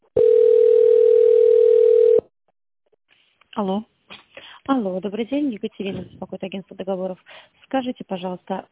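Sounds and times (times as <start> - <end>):
melodic chiming telephone line tones during call transfer: 0.2 - 2.3
speech: 5.0 - 8.6.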